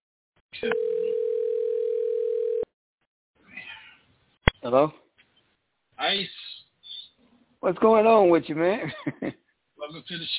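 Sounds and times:
speech: 0.6 - 0.9, 4.6 - 5.0, 6.0 - 6.4, 7.6 - 10.3
telephone dial tone: 0.7 - 2.7.

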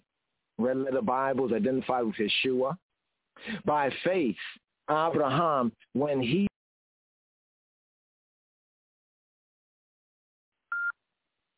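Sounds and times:
speech: 0.6 - 2.8, 3.4 - 6.5
short electronic beep with a steady mid-high tone: 10.7 - 10.9.

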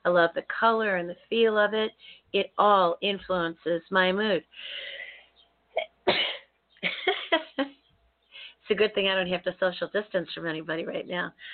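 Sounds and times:
speech: 0.0 - 5.0, 5.8 - 7.8, 8.7 - 11.5
person sneezing: 5.8 - 6.4
laughter: 6.8 - 7.7.

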